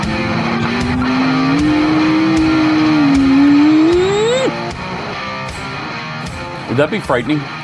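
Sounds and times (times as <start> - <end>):
electric supercar speeding past on track: 0.0 - 4.7
faint road and wind noise: 0.0 - 4.7
speech: 6.8 - 7.6.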